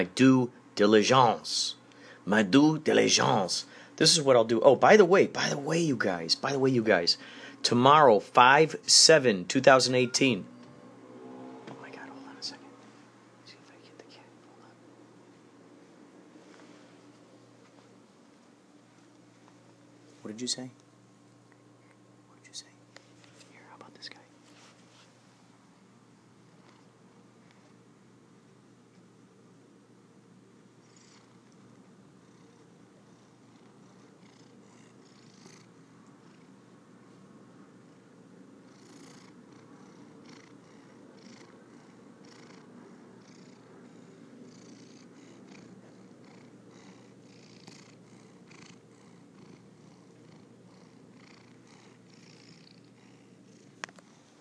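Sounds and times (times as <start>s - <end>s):
speech: 0.0s - 10.5s, 20.4s - 20.8s
faint soft rustles: 15.3s - 20.3s, 22.9s - 23.6s, 24.3s - 25.5s
cat purring: 30.8s - 37.2s, 37.8s - 54.4s.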